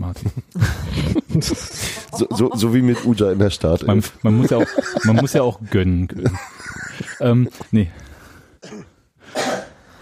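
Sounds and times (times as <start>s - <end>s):
speech: 0.1s - 0.8s, 1.4s - 6.6s, 7.2s - 8.8s
laughter: 0.2s - 7.4s
person coughing: 8.6s - 9.8s.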